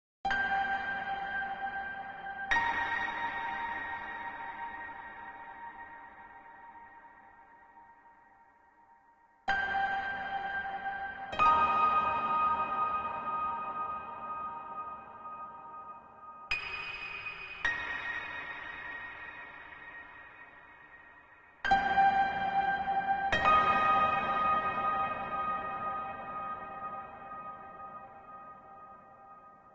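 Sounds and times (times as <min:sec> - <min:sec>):
piano: 0:00.3 - 0:29.7.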